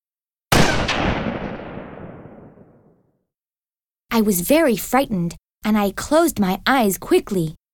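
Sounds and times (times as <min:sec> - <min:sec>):
rifle gunshot: 0:00.5 - 0:03.0
speech: 0:04.2 - 0:07.6.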